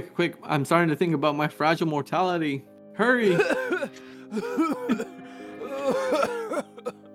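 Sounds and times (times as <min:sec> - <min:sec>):
speech: 0:00.0 - 0:05.1
person coughing in strained throaty bursts downstairs: 0:03.2 - 0:07.0.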